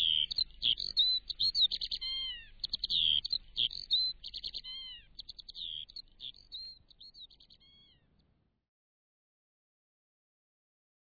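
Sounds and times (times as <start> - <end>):
Eurasian skylark singing a fast varied warble: 0.0 - 8.1.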